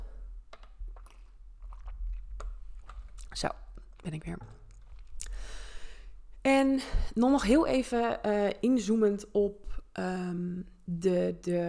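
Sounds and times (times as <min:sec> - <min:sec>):
person sipping water: 0:00.0 - 0:06.3
swallowing sounds: 0:00.6 - 0:05.4
speech: 0:03.4 - 0:04.6, 0:06.4 - 0:11.6.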